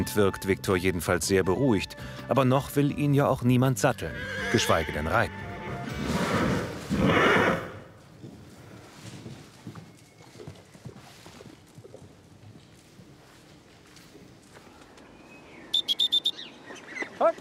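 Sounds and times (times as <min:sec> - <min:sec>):
speech: 0:00.0 - 0:05.5
horse hooves clopping on hard ground: 0:03.9 - 0:15.2
horse whinnying: 0:04.0 - 0:08.0
short sharp bird-like calls: 0:15.6 - 0:17.3.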